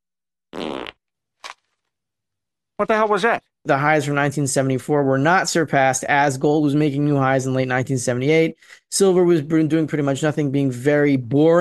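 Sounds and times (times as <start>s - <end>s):
loud raspy fart sound effect: 0.5s - 1.6s
speech: 2.8s - 11.5s.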